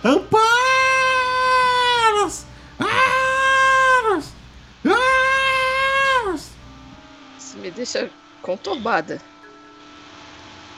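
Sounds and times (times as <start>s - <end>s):
speech: 0.0s - 0.4s, 8.8s - 9.4s
voice imitating a hurt animal's pained cry: 0.0s - 6.6s.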